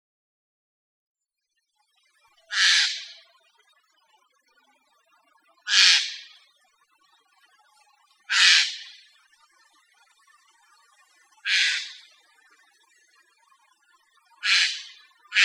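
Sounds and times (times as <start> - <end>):
Eurasian jay Garrulus glandarius giving harsh hoarse screeches: 8.3 - 8.8, 11.5 - 12.0, 14.4 - 15.4.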